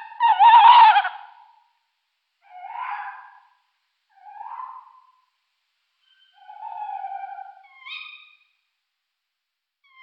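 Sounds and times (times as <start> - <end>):
tawny owl hooting softly in Luxembourg: 0.0 - 1.7, 2.4 - 5.4, 6.0 - 8.6.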